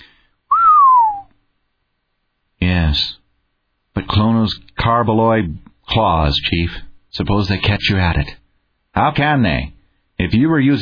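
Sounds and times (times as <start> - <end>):
long low unmelodious whistle through the teeth: 0.5 - 1.4
speech: 2.9 - 3.2, 4.0 - 8.4, 9.0 - 10.8.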